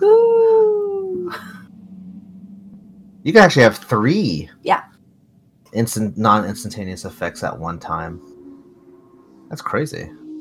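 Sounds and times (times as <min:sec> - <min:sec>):
person imitating whale song with a long vocal moan: 0:00.0 - 0:01.7
speech: 0:03.2 - 0:04.9, 0:05.7 - 0:08.3, 0:09.5 - 0:10.2.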